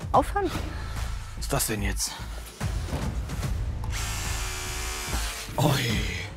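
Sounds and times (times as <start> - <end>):
speech: 0.1 - 0.8, 1.4 - 3.0, 5.6 - 6.2
drill bit grinding against steel rebar: 3.8 - 5.6.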